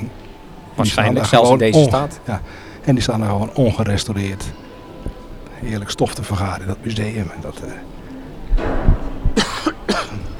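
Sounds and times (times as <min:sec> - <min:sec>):
speech: 0:00.8 - 0:04.7, 0:05.6 - 0:08.0
person coughing: 0:09.4 - 0:10.3.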